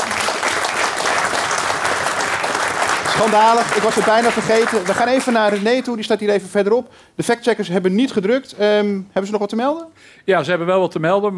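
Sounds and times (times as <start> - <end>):
live audience applause: 0.0 - 5.9
speech: 3.2 - 11.3.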